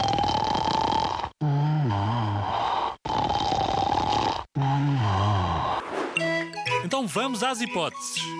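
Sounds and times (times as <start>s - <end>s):
person snoring loudly: 0.0s - 5.8s
speech: 6.9s - 8.3s.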